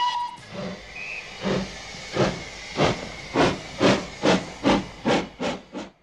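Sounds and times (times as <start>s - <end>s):
steam locomotive whistle: 0.0s - 1.4s
steam locomotive hissing in rhythmic puffs: 0.0s - 6.0s.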